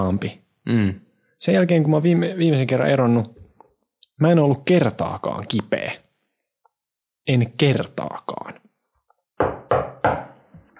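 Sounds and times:
speech: 0.0 - 3.4, 4.2 - 6.0, 7.2 - 8.6
knuckles knocking on wood: 9.4 - 10.7.

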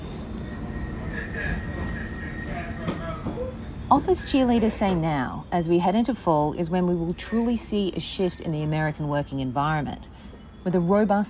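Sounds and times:
subway car riding underground rumbling: 0.0 - 11.2
faint voices: 1.0 - 5.0
speech: 3.9 - 11.2.

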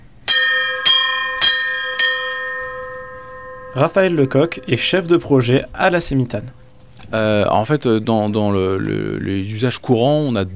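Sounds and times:
bell rung to call a river ferry: 0.0 - 6.9
speech: 3.7 - 10.5.

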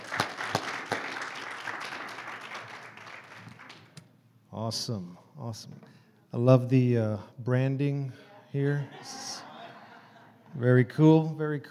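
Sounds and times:
audience applauding a speaker: 0.0 - 4.0
speech: 4.6 - 9.4, 10.6 - 11.6
laughter: 8.2 - 10.6.

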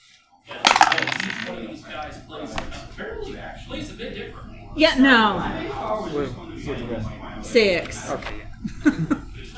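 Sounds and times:
dice rolled during a tabletop game clattering through a dice tower: 0.7 - 1.6
speech: 1.6 - 9.3.

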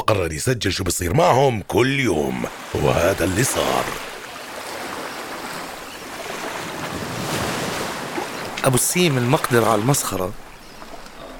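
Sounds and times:
speech: 0.1 - 4.1, 8.6 - 10.4
ocean surf washing and rolling: 2.0 - 11.3
gusty wind roar over the water: 2.5 - 10.6.

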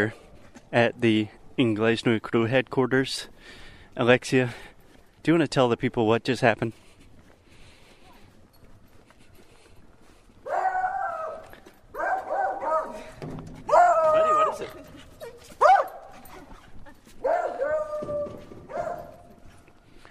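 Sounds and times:
speech: 0.0 - 6.8
several dogs barking and yelping: 10.4 - 19.8.

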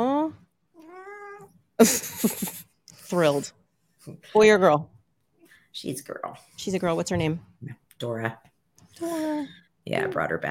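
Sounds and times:
cat meowing: 0.8 - 1.5
speech: 1.8 - 4.9, 5.8 - 10.4.

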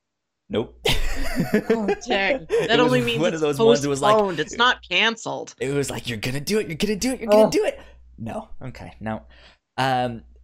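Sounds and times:
speech: 0.5 - 10.3
laughter: 0.9 - 4.7, 5.6 - 7.8
aborted sneeze with voiced gasping inhale: 2.5 - 3.2.

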